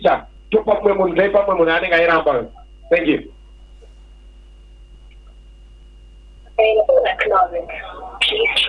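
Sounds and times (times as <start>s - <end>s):
speech: 1.0s - 3.4s, 6.6s - 8.6s
recorded network announcement over a phone line: 6.6s - 8.6s.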